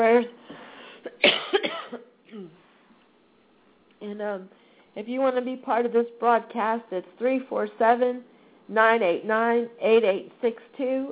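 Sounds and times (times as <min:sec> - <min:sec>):
harsh coughing over a phone line: 0:01.1 - 0:02.6
speech: 0:04.2 - 0:11.1.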